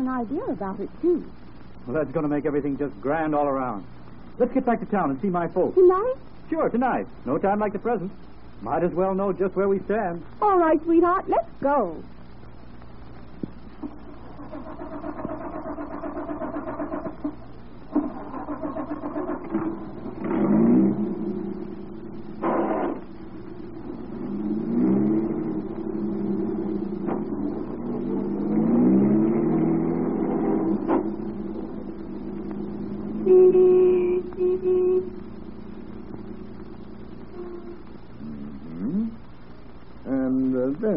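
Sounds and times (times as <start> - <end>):
speech: 0.0 - 12.2
car engine revving and accelerating onto a highway: 13.8 - 40.2.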